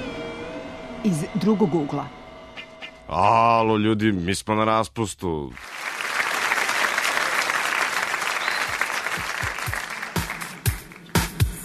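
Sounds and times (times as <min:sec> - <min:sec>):
speech: 0:01.1 - 0:02.2, 0:03.1 - 0:05.7
crowd audience applause: 0:05.6 - 0:11.4.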